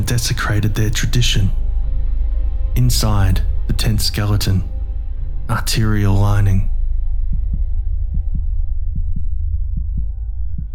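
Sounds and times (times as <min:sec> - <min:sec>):
constant low hum: 0:00.0 - 0:10.7
speech: 0:00.1 - 0:01.6, 0:02.8 - 0:04.7, 0:05.5 - 0:06.7
steady heartbeat at resting pace: 0:06.8 - 0:10.7.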